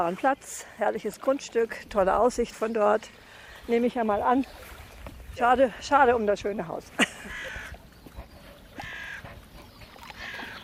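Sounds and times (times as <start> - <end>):
speech: 0.0 - 4.7, 5.4 - 7.6
crows cawing from trees: 7.3 - 7.8, 8.8 - 9.3.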